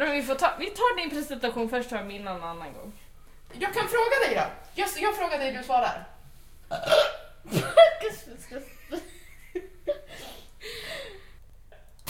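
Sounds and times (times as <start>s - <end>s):
speech: 0.0s - 6.1s, 6.7s - 9.1s
person burping: 6.7s - 7.3s.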